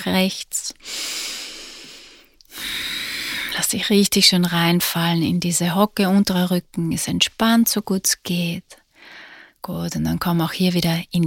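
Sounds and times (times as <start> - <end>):
speech: 0.0 - 1.4, 3.6 - 11.2
deep breathing in and out during a stretching exercise: 0.8 - 3.5, 8.9 - 9.6.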